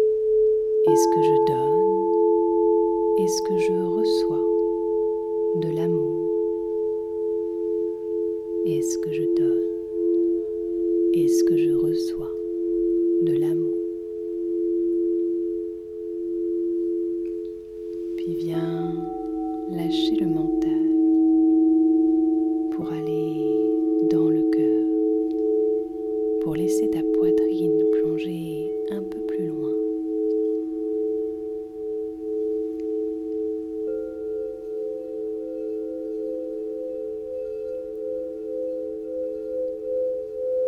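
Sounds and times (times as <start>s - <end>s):
crystal singing bowls ringing: 0.0s - 40.6s
speech: 0.9s - 1.6s, 3.2s - 4.5s, 5.5s - 6.2s, 8.6s - 9.8s, 11.2s - 12.4s, 13.2s - 13.6s, 19.8s - 20.8s
person speaking softly: 3.2s - 4.6s, 5.5s - 6.4s, 8.7s - 9.8s, 11.2s - 12.4s, 13.2s - 13.9s, 18.2s - 21.1s, 22.7s - 25.1s, 26.4s - 30.0s.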